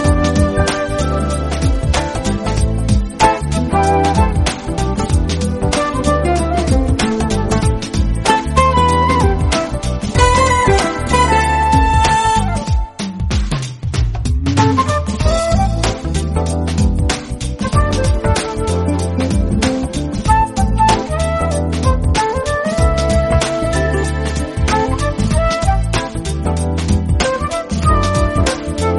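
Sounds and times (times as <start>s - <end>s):
smooth jazz: 0.0s - 28.9s.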